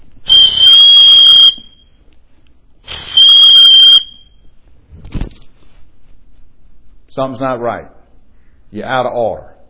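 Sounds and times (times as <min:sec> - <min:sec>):
referee's pea whistle blasts on a playing field: 0:00.3 - 0:01.9, 0:03.0 - 0:04.4
speech: 0:07.2 - 0:08.0, 0:08.7 - 0:09.5.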